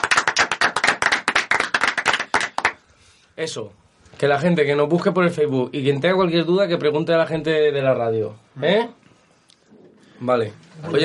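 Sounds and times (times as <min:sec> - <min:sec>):
small group applauding for a child: 0:00.0 - 0:02.8
speech: 0:03.4 - 0:09.0, 0:10.2 - 0:11.0.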